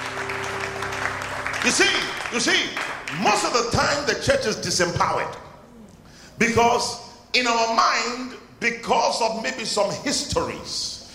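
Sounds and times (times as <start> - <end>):
audience clapping: 0.0 - 3.9
speech: 1.6 - 5.4, 6.4 - 11.0.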